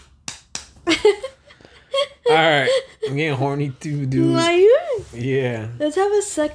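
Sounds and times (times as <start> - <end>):
slaps of bare breasts: 0.0 - 1.1
speech: 2.3 - 6.5.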